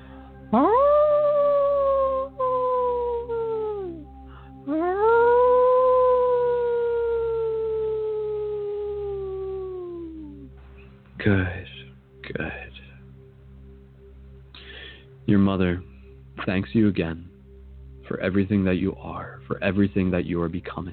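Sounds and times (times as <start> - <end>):
faint low steady drone: 0.0 - 20.9
speech: 0.5 - 0.7, 16.7 - 17.3, 18.2 - 20.9
wolf howling: 0.5 - 4.1, 4.7 - 10.5.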